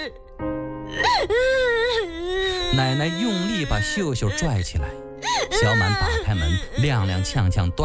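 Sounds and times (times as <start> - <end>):
speech: 0.0 - 0.5, 2.7 - 5.0, 5.6 - 7.8
girl crying out in distress: 1.0 - 4.4, 5.2 - 7.4.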